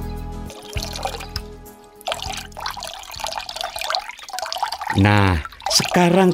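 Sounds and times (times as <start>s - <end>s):
water gushing from a hose attached to a water tap: 0.5s - 6.3s
speech: 5.1s - 6.3s.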